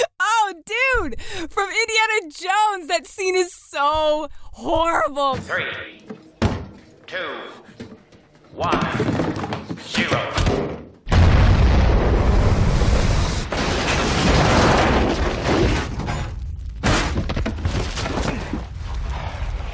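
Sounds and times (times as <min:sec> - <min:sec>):
speech: 0:01.1 - 0:06.0, 0:07.1 - 0:07.6, 0:08.6 - 0:10.8
nuclear explosion sound effect with deep roaring rumble: 0:11.1 - 0:19.7.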